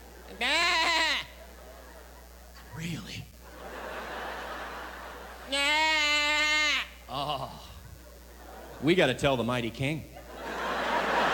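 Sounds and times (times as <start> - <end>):
sheep bleating: 0.3 - 1.4, 5.5 - 7.6
laughter: 1.2 - 2.3, 3.4 - 5.5, 7.1 - 9.0, 10.1 - 11.3
speech: 2.8 - 3.4, 8.8 - 10.1.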